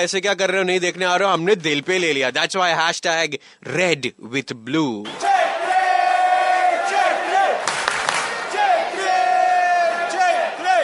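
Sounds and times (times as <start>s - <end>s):
speech: 0.0s - 5.3s
huge crowd of football fans chanting in a stadium: 5.1s - 10.8s.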